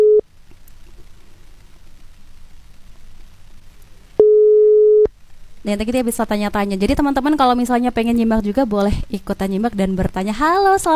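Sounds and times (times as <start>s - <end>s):
phone call tones while dialing someone: 0.0s - 0.2s, 4.2s - 5.1s
low noise: 0.0s - 10.9s
speech: 5.6s - 10.9s.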